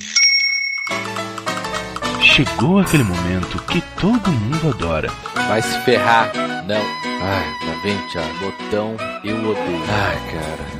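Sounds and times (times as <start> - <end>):
small bell ringing: 0.0 - 1.1
speech: 2.4 - 10.7.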